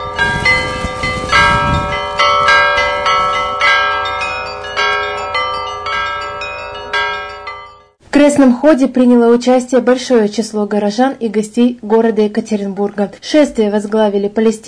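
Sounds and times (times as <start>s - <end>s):
church bells ringing: 0.0s - 8.0s
speech: 8.2s - 14.6s.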